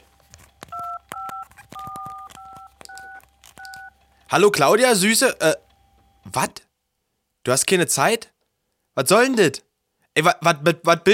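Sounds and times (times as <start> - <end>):
dual-tone telephone keypad beeps: 0.7 - 4.0
speech: 4.3 - 5.6, 6.3 - 6.7, 7.4 - 8.3, 9.0 - 11.1.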